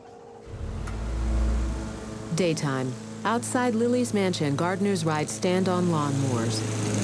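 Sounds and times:
car engine starting: 0:00.4 - 0:04.6
speech: 0:02.4 - 0:06.9.

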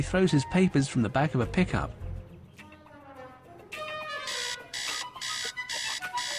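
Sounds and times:
speech: 0:00.0 - 0:02.0
alarm clock buzzing in harsh bursts: 0:04.3 - 0:06.3.

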